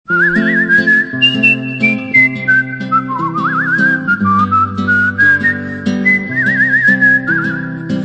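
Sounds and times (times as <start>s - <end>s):
person whistling: 0.1s - 8.0s.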